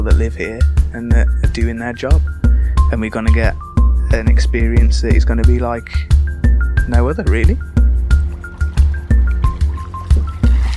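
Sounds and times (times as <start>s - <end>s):
speech: 0.0s - 6.2s, 6.9s - 7.8s
river water slapping and splashing against a moving boat hull: 6.9s - 10.7s.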